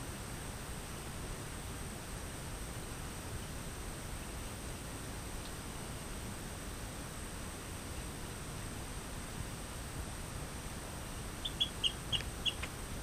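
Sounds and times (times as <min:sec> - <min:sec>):
background hiss: 0:00.0 - 0:13.0
Rio Grande chirping frog Eleutherodactylus cystignathoides chirping: 0:11.4 - 0:12.7.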